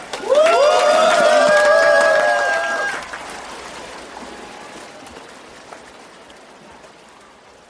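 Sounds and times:
crowd of tourists applauding and cheering at a dolphin show: 0.0s - 5.8s
murmur of voices: 2.9s - 7.6s.

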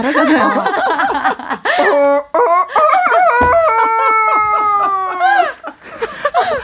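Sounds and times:
speech: 0.0s - 2.3s
laughter: 0.0s - 6.6s
person imitating a sick chicken with crowing and clucking: 1.8s - 5.2s.

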